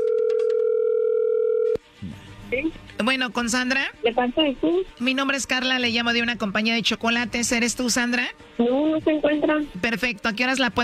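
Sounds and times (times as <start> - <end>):
steady single-pitched telephone tone as a call is being dialed: 0.0 - 1.8
speech: 2.5 - 10.8.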